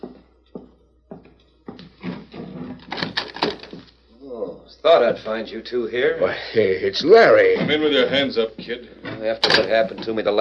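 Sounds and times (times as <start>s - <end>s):
door creaking and scraping as it swings open: 2.0s - 3.9s, 8.9s - 10.3s
speech: 4.3s - 10.3s.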